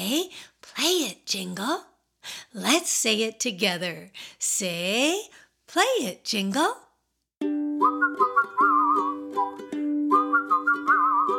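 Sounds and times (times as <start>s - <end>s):
speech: 0.1s - 6.8s
bright warbling whistled tune with bird-like trills: 7.8s - 11.3s.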